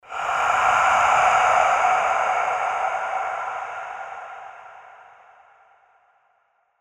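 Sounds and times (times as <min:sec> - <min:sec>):
ominous breathing: 0:00.0 - 0:06.2.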